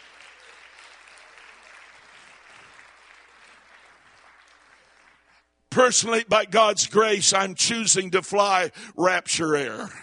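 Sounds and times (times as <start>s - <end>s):
audience clapping hands: 0.0s - 5.7s
speech: 5.8s - 10.0s.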